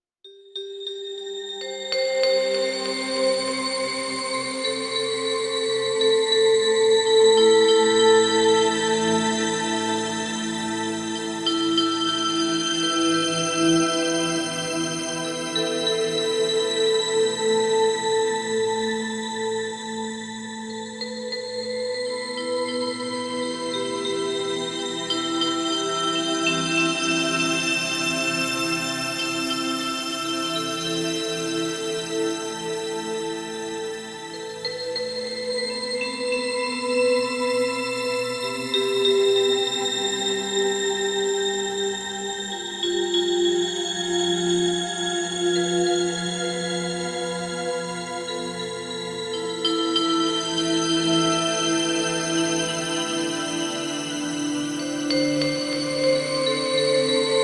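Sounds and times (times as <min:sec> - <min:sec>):
enchanting bells: 0:00.3 - 0:57.4.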